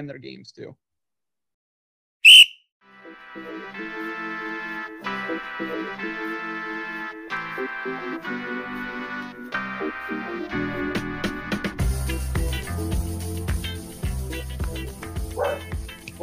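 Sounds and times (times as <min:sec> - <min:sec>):
speech: 0:00.0 - 0:00.9, 0:03.4 - 0:11.3
bass-heavy music: 0:02.8 - 0:16.2
dog barking in short sharp bursts: 0:15.3 - 0:16.2.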